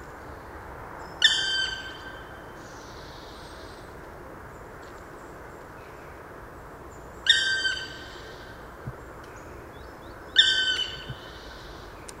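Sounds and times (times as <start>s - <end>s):
steady low background noise: 0.0s - 12.1s
black woodpecker calling in a park garden in Landshut: 7.2s - 8.6s, 10.0s - 12.0s.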